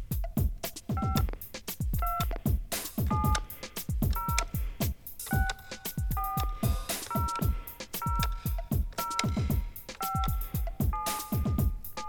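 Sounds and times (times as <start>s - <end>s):
thumping rhythmic background: 0.0s - 12.0s
touch-tone keypad beeps on a card activation phone line: 1.0s - 1.3s, 2.0s - 2.4s, 3.1s - 3.5s, 4.1s - 4.6s, 5.3s - 12.0s.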